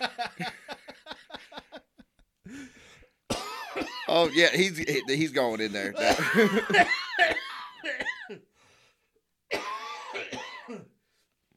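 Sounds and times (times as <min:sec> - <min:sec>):
harsh rattly coughing: 0:03.3 - 0:05.2, 0:06.0 - 0:08.5, 0:09.5 - 0:11.0
speech: 0:04.2 - 0:07.0
laughter: 0:06.0 - 0:07.0.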